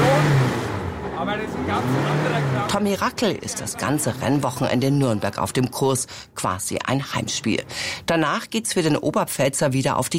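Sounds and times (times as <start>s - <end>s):
vintage Super Touring race car engine starting at a street circuit in Nuremberg: 0.0s - 6.3s
speech: 1.3s - 10.1s.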